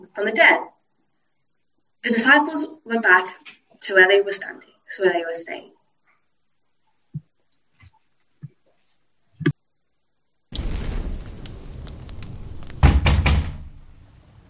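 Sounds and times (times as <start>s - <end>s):
speech: 0.1s - 0.7s, 2.0s - 5.8s
sudden loud sustained crashing and rumbling noise: 10.6s - 14.4s
heavy pounding on a door: 12.8s - 13.6s.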